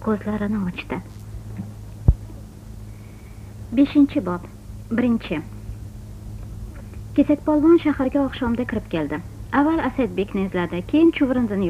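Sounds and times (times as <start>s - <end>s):
speech: 0.0s - 1.2s, 3.7s - 5.6s, 7.2s - 11.6s
steady low hum: 0.0s - 11.6s
heartbeat pulse sound effect: 1.6s - 2.4s.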